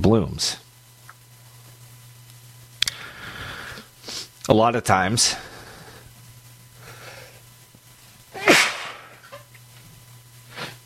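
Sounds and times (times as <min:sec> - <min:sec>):
low steady hum: 0:00.0 - 0:10.8
speech: 0:00.1 - 0:00.6, 0:04.5 - 0:05.5
person sneezing turned away from the microphone: 0:08.4 - 0:09.2.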